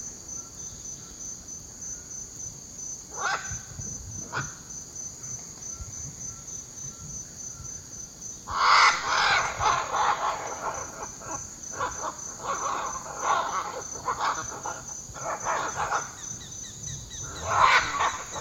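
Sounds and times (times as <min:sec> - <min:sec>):
continuous high insect whine: 0:00.0 - 0:18.4
scarlet macaw harsh squawks in the eastern lowlands of South America: 0:03.1 - 0:03.6, 0:08.5 - 0:16.5, 0:17.2 - 0:18.4.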